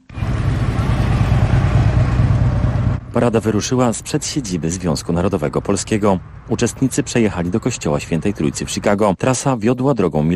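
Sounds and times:
engine rumble of several hundred motorcycles in a Chicago street parade: 0:00.0 - 0:09.2
speech: 0:03.2 - 0:10.3.

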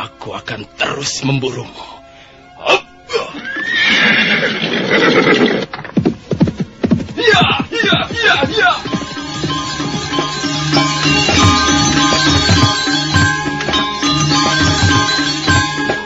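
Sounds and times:
speech: 0:00.2 - 0:02.0, 0:04.4 - 0:05.7, 0:07.4 - 0:09.1
horse whinnying: 0:03.1 - 0:05.8
horse hoofbeats galloping along a road at the edge of a small forest: 0:05.2 - 0:15.9.

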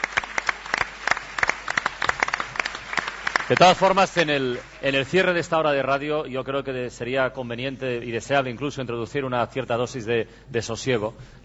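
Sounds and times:
small audience applauding a guest on a live morning radio programme in Tarragona: 0:00.0 - 0:05.6
speech: 0:03.5 - 0:11.4.

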